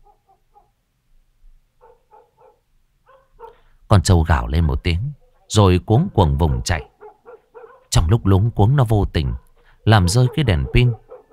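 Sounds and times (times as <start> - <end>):
dogs barking at houses around a neighbourhood: 0.0 - 0.8, 1.8 - 3.7, 5.2 - 8.1, 9.3 - 11.3
speech: 3.9 - 6.9, 7.9 - 11.0.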